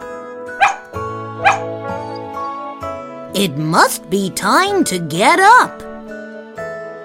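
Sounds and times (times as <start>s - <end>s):
soft music: 0.0s - 7.0s
dog barking: 0.6s - 2.2s
speech: 3.4s - 5.9s.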